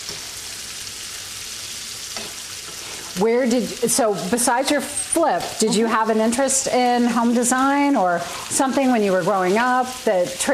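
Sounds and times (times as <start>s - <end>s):
food sautéing in a pan: 0.0s - 10.5s
speech: 3.2s - 10.5s.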